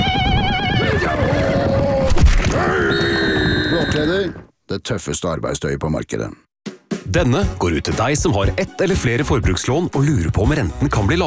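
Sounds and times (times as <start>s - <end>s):
horse neighing on the Mongolian steppe: 0.3s - 4.5s
speech: 4.0s - 6.4s, 7.1s - 11.2s.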